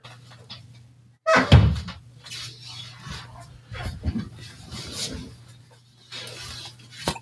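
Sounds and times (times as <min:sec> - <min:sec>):
door opening and shutting with a solid thunk: 0:01.3 - 0:02.0.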